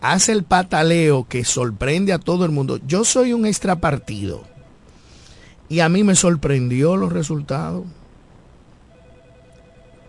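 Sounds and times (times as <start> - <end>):
speech: 0.0 - 4.5, 5.7 - 8.0
hiss: 0.0 - 10.0
telephone ringing with incoming call: 3.7 - 4.8, 8.9 - 10.0.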